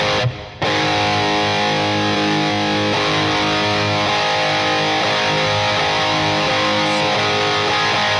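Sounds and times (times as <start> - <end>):
electric guitar through a distortion plus detune effect: 0.0 - 8.1.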